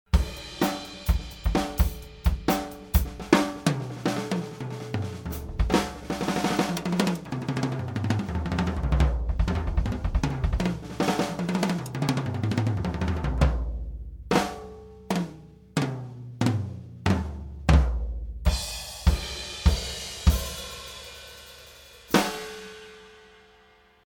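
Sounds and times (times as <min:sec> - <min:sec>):
snare drum: 0:00.1 - 0:21.1, 0:22.1 - 0:22.6
cymbals: 0:00.2 - 0:04.6, 0:18.5 - 0:23.8.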